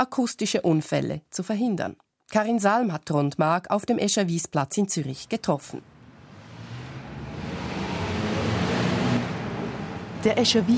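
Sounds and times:
speech: 0.0s - 5.9s, 10.2s - 10.7s
roar of dense city traffic with passing vehicles: 5.8s - 10.7s.

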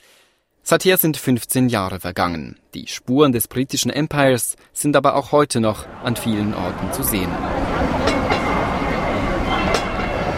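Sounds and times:
speech: 0.7s - 8.2s
double-decker tram rumbling along its tracks: 5.8s - 10.3s
tram wheels clacking over rail joints: 7.6s - 10.3s.

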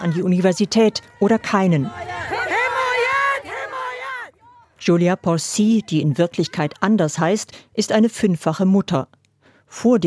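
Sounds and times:
speech: 0.0s - 2.3s, 4.8s - 10.0s
group of women protesters in Kabul shouting slogans: 0.0s - 6.9s.

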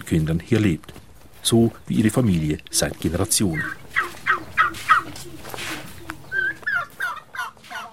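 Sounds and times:
speech: 0.1s - 3.8s
turkeys gobbling on a small farm plot: 2.6s - 7.9s.

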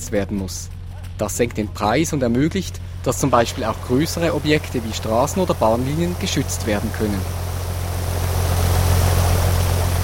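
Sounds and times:
constant low mechanical hum: 0.0s - 10.0s
speech: 0.1s - 7.5s
water sprayed onto a test slope before a landslide experiment: 2.9s - 10.0s.

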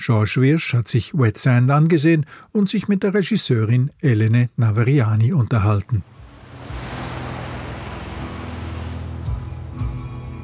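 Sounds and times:
speech: 0.0s - 6.2s
ocean waves rushing: 6.0s - 9.6s
low rumbling hum: 6.0s - 10.1s.

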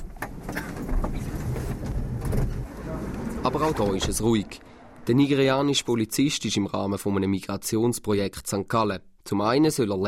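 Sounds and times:
scattered clanks and knocks: 0.0s - 2.6s
low rumble of rail traffic in a busy station: 0.0s - 5.9s
speech: 3.4s - 10.0s.

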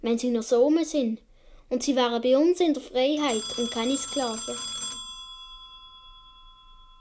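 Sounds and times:
speech: 0.0s - 4.7s
telephone bell ringing at a police post: 3.2s - 7.0s.

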